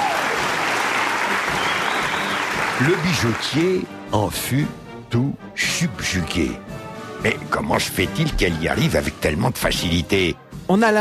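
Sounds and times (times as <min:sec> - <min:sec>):
applause for a performer after a feat of coordinated movement: 0:00.0 - 0:03.9
speech: 0:02.8 - 0:10.9.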